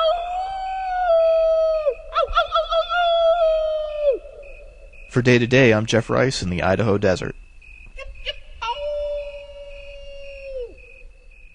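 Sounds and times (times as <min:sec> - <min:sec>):
mouse giving a high-pitched howl in the Idaho desert: 0:00.0 - 0:05.0, 0:08.0 - 0:11.1
speech: 0:05.2 - 0:07.4.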